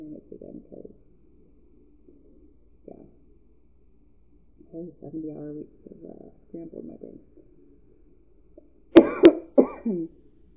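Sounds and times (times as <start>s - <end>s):
speech: 4.8s - 7.5s, 9.8s - 10.2s
person coughing in sharp hacking and throaty coughs: 9.0s - 10.0s.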